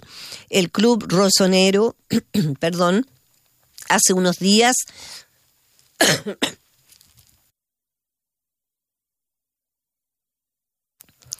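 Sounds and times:
speech: 0.5 - 3.2, 3.9 - 5.2, 6.0 - 6.6
person coughing: 2.1 - 2.6, 6.0 - 6.6
brief rustle: 6.8 - 7.5.

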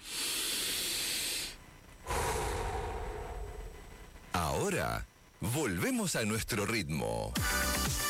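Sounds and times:
deep breath: 0.0 - 4.2
speech: 4.6 - 8.0.

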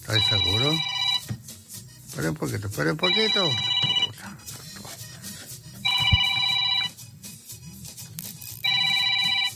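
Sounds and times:
telephone ringing with electronic trilling tone: 0.0 - 1.3, 3.0 - 4.2, 5.8 - 7.0, 8.6 - 9.5
speech: 0.1 - 1.4, 2.2 - 3.8.

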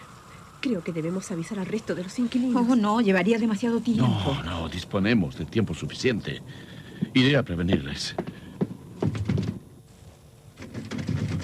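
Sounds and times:
speech: 0.6 - 8.3
locked door handle rattling: 10.6 - 11.4.

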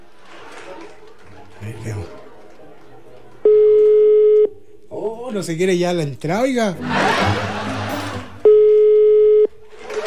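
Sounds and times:
laughter: 0.0 - 3.9, 6.7 - 8.8, 9.6 - 10.0
speech: 1.8 - 2.2, 5.3 - 7.5
ring tone of an unanswered telephone call: 3.5 - 4.5, 8.4 - 9.5.

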